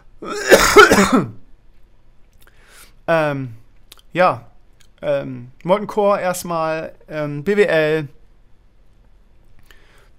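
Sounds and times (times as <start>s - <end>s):
harsh rasping cough: 0.2s - 1.4s
speech: 0.2s - 1.4s, 3.1s - 8.2s.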